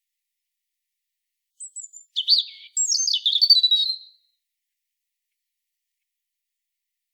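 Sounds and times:
Erithacus rubecula European robin song: 1.6s - 4.3s.

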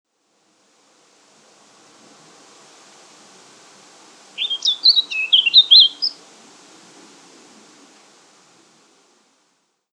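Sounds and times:
Eurasian blackcap Sylvia atricapilla warbling: 4.4s - 6.2s.

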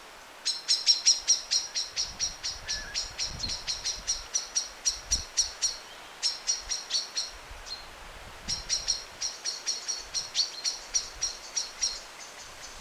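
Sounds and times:
common blackbird Turdus merula giving chink calls: 0.4s - 7.8s, 8.5s - 12.7s.

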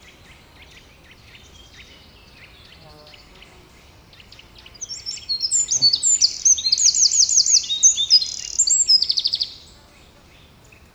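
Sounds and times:
Eurasian wren singing: 4.2s - 9.8s.

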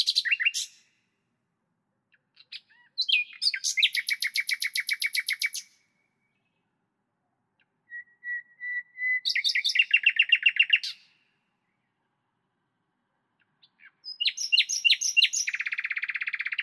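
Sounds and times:
common nightingale Luscinia megarhynchos singing: 0.0s - 1.0s, 2.1s - 6.7s, 7.6s - 12.0s, 13.4s - 16.6s.

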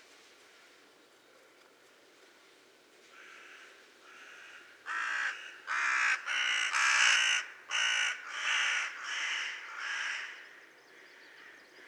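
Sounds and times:
Carrion crow Corvus corone calling with rasping caws: 4.1s - 10.3s.

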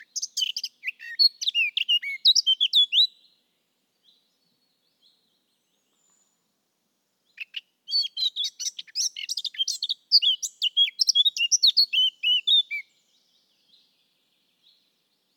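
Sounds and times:
Eurasian blackcap Sylvia atricapilla singing chattering and whistled notes: 0.0s - 3.3s, 7.3s - 13.9s.

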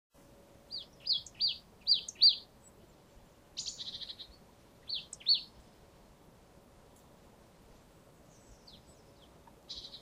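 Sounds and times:
marsh tit sharp downslurred chip calls: 0.7s - 2.9s, 3.6s - 5.5s, 8.4s - 10.0s.

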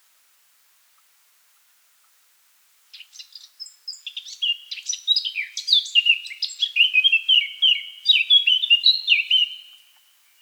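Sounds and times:
Eurasian blackcap Sylvia atricapilla warbling song: 2.9s - 10.3s.

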